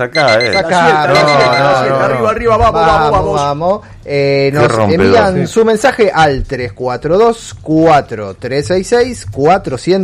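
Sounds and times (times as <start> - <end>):
speech: 0.0 - 10.0
alarm clock ringing with warbling melodic electronic tone: 0.2 - 1.8.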